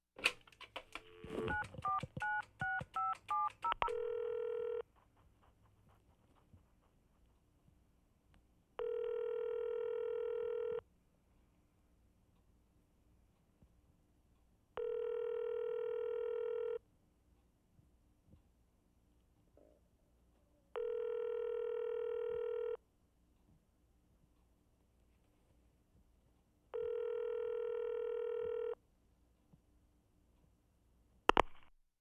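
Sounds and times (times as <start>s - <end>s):
telephone dial tone in an office: 0.8s - 4.8s, 8.8s - 10.8s, 14.8s - 16.8s, 20.8s - 22.8s, 26.8s - 28.8s.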